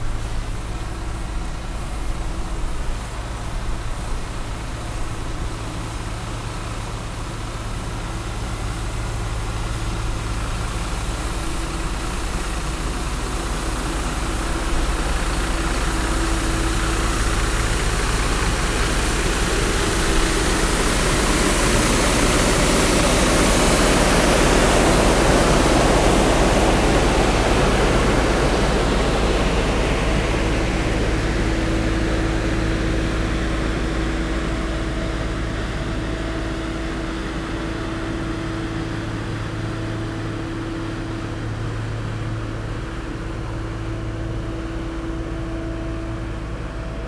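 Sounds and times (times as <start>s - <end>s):
street sweeper machine: 0.0s - 47.0s.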